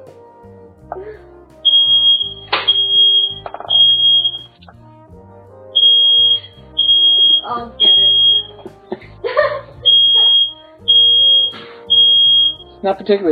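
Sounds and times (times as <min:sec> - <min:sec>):
smoke alarm shrieking: 0:01.6 - 0:04.6, 0:05.8 - 0:08.6, 0:09.9 - 0:12.8
speech: 0:07.5 - 0:07.8, 0:12.8 - 0:13.3
laughter: 0:08.0 - 0:10.5.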